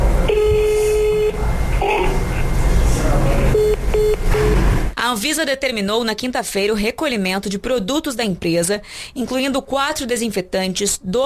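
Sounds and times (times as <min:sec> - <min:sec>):
noisy background: 0:00.0 - 0:11.2
telephone beeps from a dropped call attempt: 0:03.5 - 0:04.6
speech: 0:05.1 - 0:11.2.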